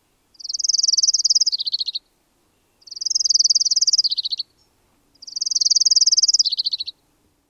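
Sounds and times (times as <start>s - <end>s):
Orange-crowned warbler buzzy trills: 0.4s - 2.0s, 2.8s - 4.5s, 5.2s - 6.9s.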